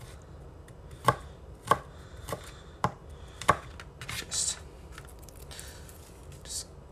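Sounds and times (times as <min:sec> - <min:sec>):
knife chopping garlic: 0:00.0 - 0:04.5
soft handling sounds: 0:04.8 - 0:06.6.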